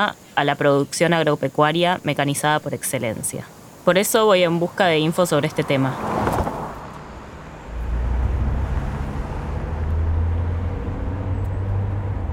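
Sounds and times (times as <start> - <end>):
speech: 0.0 - 6.4
road and wind noise in car cabin: 3.5 - 12.3
car engine rumbling: 5.4 - 12.3.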